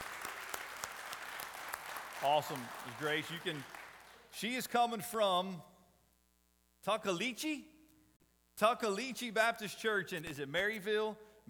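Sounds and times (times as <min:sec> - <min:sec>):
roomful of people clapping and applauding: 0:00.0 - 0:04.4
speech: 0:02.2 - 0:05.7, 0:06.8 - 0:07.7, 0:08.6 - 0:11.4.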